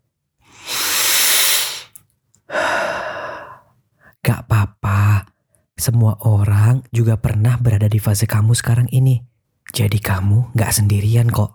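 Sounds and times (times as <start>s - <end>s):
long deep breath in and out: 0.5s - 3.7s
speech: 5.8s - 11.5s.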